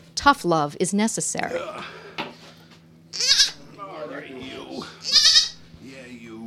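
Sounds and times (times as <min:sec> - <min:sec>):
speech: 0:00.2 - 0:02.0
goat bleating: 0:03.1 - 0:03.7, 0:05.0 - 0:05.6.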